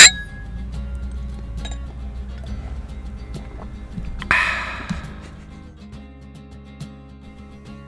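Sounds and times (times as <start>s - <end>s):
beer glasses clinking in a toast: 0.0s - 5.8s
low steady hum: 0.0s - 5.8s.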